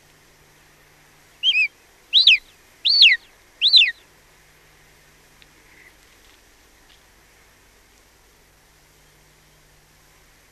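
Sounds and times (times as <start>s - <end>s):
golden eagle giving high arched yelps: 1.4s - 4.0s.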